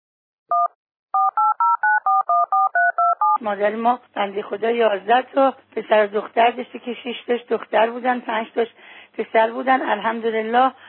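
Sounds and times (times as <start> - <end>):
phone keypad touch-tone beeps: 0.5 - 3.4
speech: 3.4 - 10.8.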